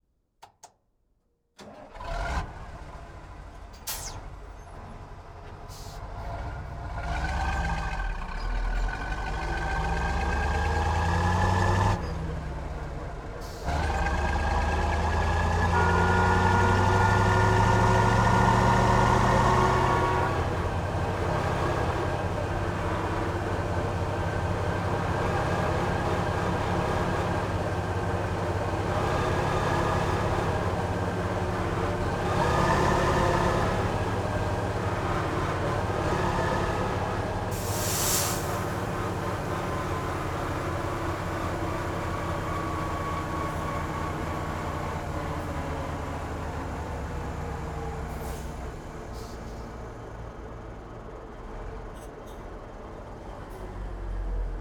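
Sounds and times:
Ural 4320 diesel truck engine starting, idling and driving: 1.6s - 54.5s
Ural 4320 truck horn: 15.5s - 18.5s.

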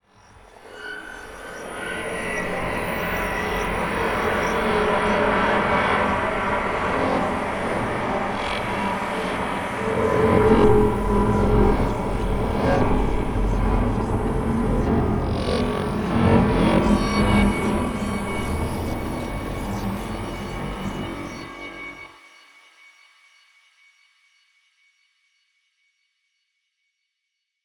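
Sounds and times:
sci-fi atmosphere: 0.8s - 22.1s.

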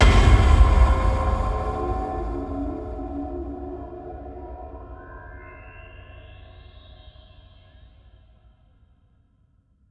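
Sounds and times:
long evolving cinematic impacts: 0.0s - 5.4s.

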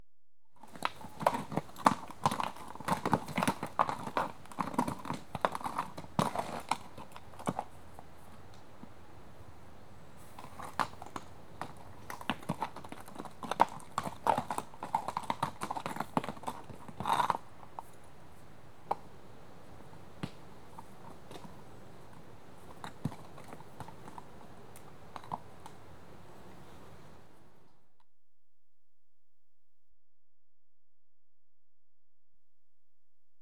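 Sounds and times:
one restless horse on a rough track: 0.6s - 27.6s.

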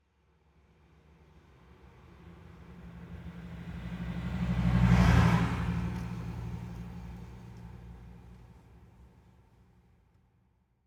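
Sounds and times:
car passing by slowly heard from interior: 2.8s - 8.5s.

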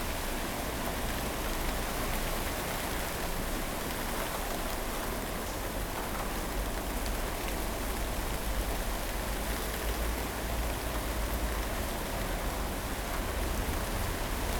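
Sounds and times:
rain on a street: 0.0s - 14.5s.

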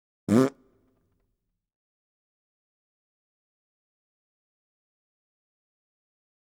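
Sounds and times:
short raspberry: 0.3s - 0.6s.

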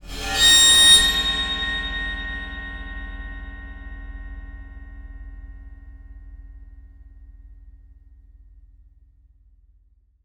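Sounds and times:
bowed cymbal highs: 0.0s - 6.6s.

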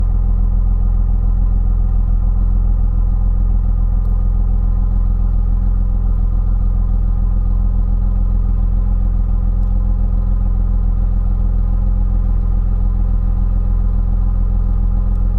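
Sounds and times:
BMW E46 car engine idling with exhaust: 0.0s - 15.3s.

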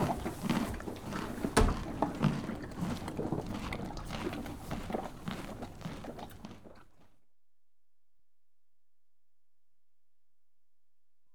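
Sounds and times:
horse crunching a carrot: 0.0s - 7.2s.

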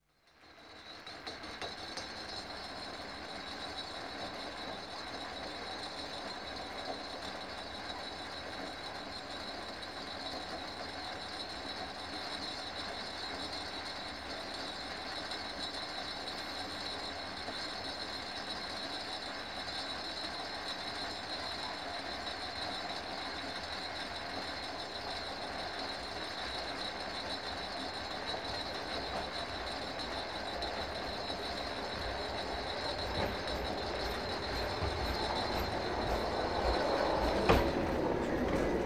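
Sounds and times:
funicular railway in Prague recorded outside: 0.5s - 38.8s.

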